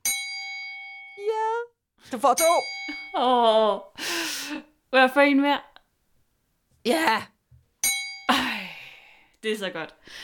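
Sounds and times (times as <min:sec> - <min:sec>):
small context bell ringing: 0:00.0 - 0:01.4, 0:02.3 - 0:03.2, 0:07.8 - 0:08.4
person exclaiming: 0:01.2 - 0:01.7
speech: 0:02.1 - 0:05.7, 0:06.8 - 0:07.3, 0:09.4 - 0:10.2.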